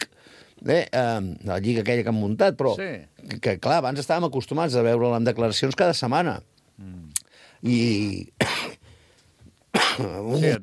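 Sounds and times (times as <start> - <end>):
speech: 0.6 - 7.0, 7.6 - 8.5, 10.0 - 10.6
harsh throaty coughing fit: 8.4 - 8.8, 9.7 - 10.3.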